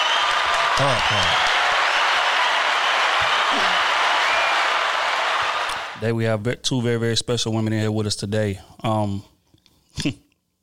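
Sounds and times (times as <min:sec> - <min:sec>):
small group clapping: 0:00.0 - 0:06.0
voices cheering or calling out: 0:00.0 - 0:06.0
speech: 0:00.8 - 0:01.6, 0:03.5 - 0:03.9, 0:06.0 - 0:09.3, 0:10.0 - 0:10.2.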